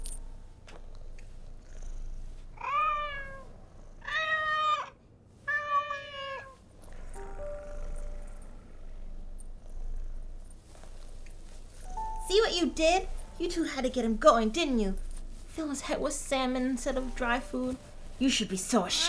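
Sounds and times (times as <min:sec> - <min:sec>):
cat meowing: 0:02.6 - 0:06.6
speech: 0:12.3 - 0:15.0, 0:15.6 - 0:19.0.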